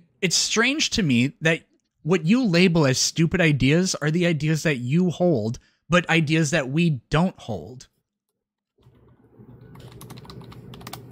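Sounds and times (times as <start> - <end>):
speech: 0.2 - 7.9
rapid typing on a computer keyboard: 9.6 - 11.1.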